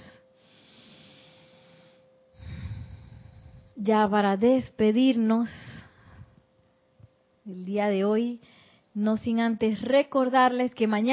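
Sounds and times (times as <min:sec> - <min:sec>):
slow deep breath in through the nose and fuller louder exhale: 0:00.4 - 0:03.8
speech: 0:03.8 - 0:05.8, 0:07.5 - 0:11.1.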